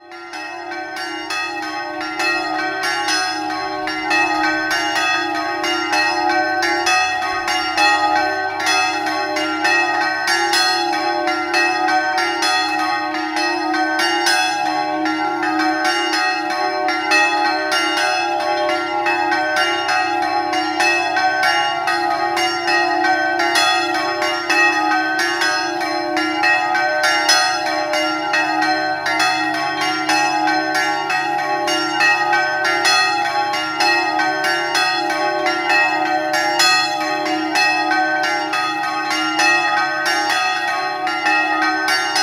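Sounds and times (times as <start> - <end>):
church bells ringing: 0.0 - 42.2.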